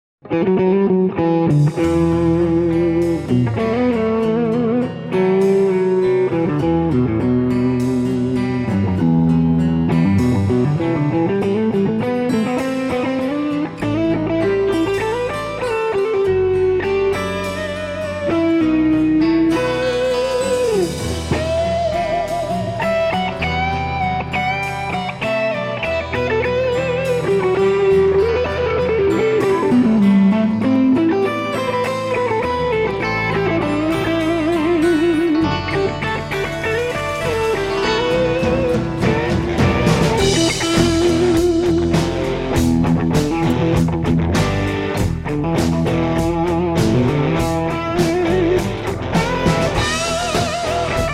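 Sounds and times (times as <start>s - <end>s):
electric guitar with PAF clone pickups: 0.2s - 51.1s.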